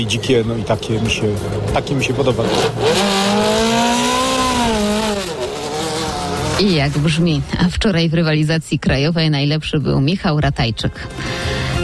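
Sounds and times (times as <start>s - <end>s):
speech: 0.0s - 3.6s, 6.6s - 11.4s
race car engine revving: 0.5s - 8.1s
race car tires squealing: 2.0s - 7.7s.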